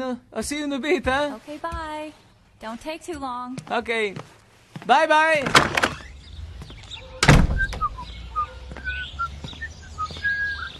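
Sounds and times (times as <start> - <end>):
speech: 0.0 - 6.0
bird chirping: 5.8 - 10.7
loud door-like thunk: 7.2 - 7.9.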